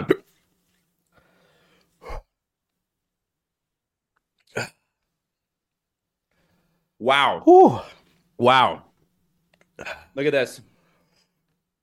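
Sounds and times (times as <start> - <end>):
hiccups: 0.0 - 0.4, 4.4 - 4.9
speech: 4.5 - 4.8, 7.0 - 8.9, 9.8 - 10.7.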